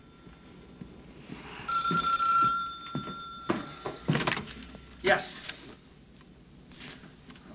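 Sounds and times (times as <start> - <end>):
old-style telephone bell ringing with a bright metallic trill: 0.0 - 4.8
speech: 5.1 - 5.4.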